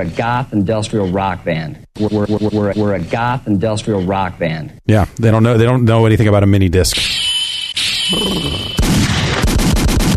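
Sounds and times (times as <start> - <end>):
speech: 0.0 - 7.2, 8.1 - 8.8
gunfire sound effect shots: 8.7 - 10.1.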